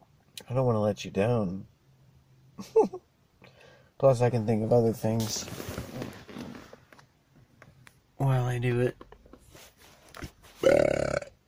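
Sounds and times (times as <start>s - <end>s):
speech: 0.5s - 1.7s, 2.6s - 3.1s, 4.0s - 5.7s, 8.6s - 9.1s
loud burp: 10.6s - 11.4s.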